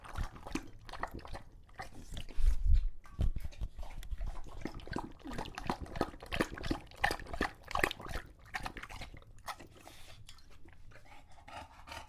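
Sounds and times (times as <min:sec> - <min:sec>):
male English Bulldog drinking water from a bowl: 0:00.0 - 0:02.7, 0:03.3 - 0:12.0
male English Bulldog breathing heavily after a long walk: 0:10.9 - 0:12.0.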